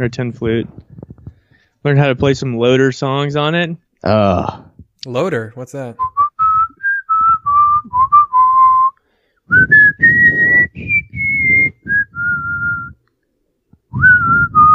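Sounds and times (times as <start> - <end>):
speech: 0.0 - 0.8, 1.8 - 6.1
person whistling a slow flowing melody: 6.0 - 13.0, 13.9 - 14.7.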